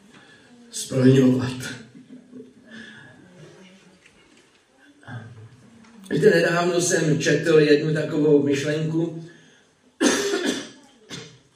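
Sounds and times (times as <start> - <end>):
speech: 0.8 - 1.8, 6.2 - 9.3
person coughing: 10.0 - 11.4.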